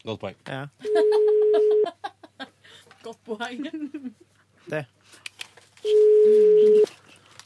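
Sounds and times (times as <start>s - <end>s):
speech: 0.0s - 2.0s, 3.0s - 5.2s, 5.8s - 7.0s
laughter: 0.8s - 2.5s
ringback tone from a call placed from a mobile phone: 0.9s - 1.8s, 5.8s - 6.9s.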